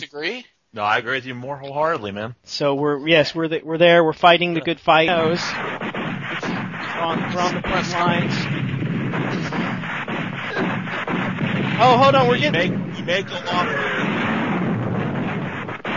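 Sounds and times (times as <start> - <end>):
speech: 0.0 - 5.9, 7.0 - 8.5, 11.8 - 14.0
booming explosion sound effects: 4.9 - 15.9.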